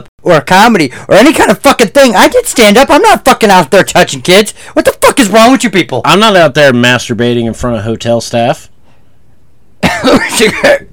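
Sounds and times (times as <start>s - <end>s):
speech: 0.0s - 8.7s, 9.8s - 10.9s
person coughing and clearing throat with something stuck in the throat: 9.8s - 10.9s.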